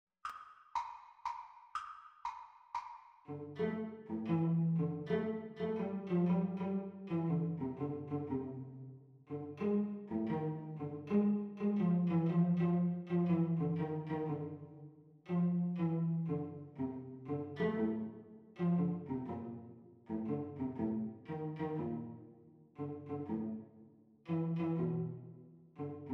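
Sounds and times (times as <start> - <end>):
cello duet teacher part at exam speed: 3.3 - 8.7, 9.3 - 14.6, 15.3 - 23.6, 24.3 - 26.1.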